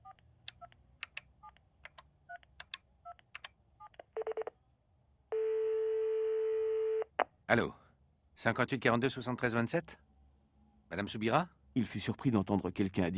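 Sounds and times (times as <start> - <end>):
long loud steady telephone tone: 4.2 - 4.6, 5.3 - 7.2
speech: 7.5 - 7.8, 8.4 - 10.1, 10.9 - 13.1.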